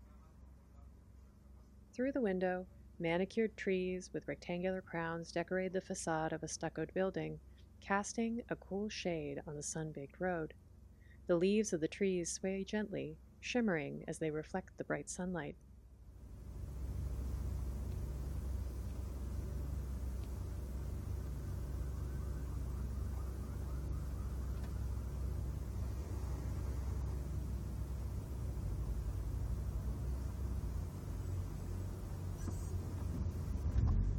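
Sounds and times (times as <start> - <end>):
speech: 2.0 - 10.6, 11.3 - 15.7
car rolling along a road with tire and engine noise: 16.1 - 34.1.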